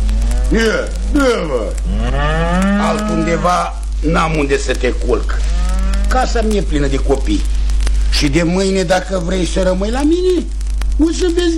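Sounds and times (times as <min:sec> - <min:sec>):
cows mooing in a stable: 0:00.0 - 0:03.6, 0:05.4 - 0:06.3
speech: 0:00.5 - 0:11.5.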